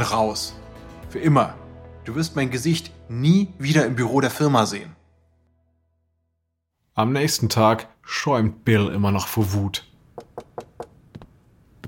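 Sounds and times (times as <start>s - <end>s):
speech: 0.0s - 5.0s, 7.0s - 10.3s
knocking on a wooden front door: 10.2s - 11.8s.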